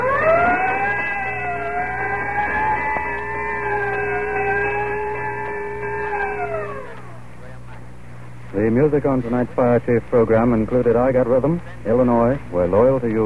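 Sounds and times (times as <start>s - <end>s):
fire engine siren wailing: 0.0s - 7.3s
speech: 8.8s - 13.2s.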